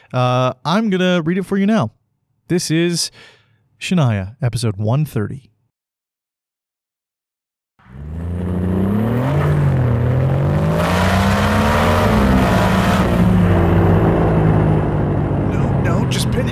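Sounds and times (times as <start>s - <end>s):
speech: 0.1s - 5.5s
old vehicle engine struggling and stalling: 7.8s - 16.4s.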